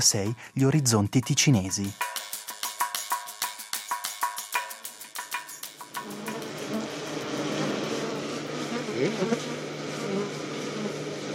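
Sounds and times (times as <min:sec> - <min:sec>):
speech: 0:00.0 - 0:02.2
honeybees buzzing at the flight entrance of a hive: 0:05.8 - 0:11.3.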